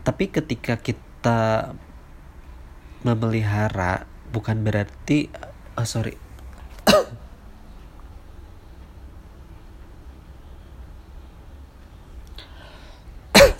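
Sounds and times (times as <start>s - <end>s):
speech: 0.0s - 1.9s, 3.0s - 6.2s, 6.9s - 7.2s
faint low hum: 0.0s - 13.5s
person coughing: 6.8s - 7.2s, 13.3s - 13.5s.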